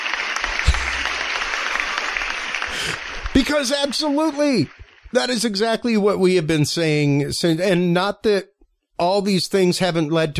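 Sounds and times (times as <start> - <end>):
crowd applause: 0.0 - 5.8
speech: 2.8 - 10.3.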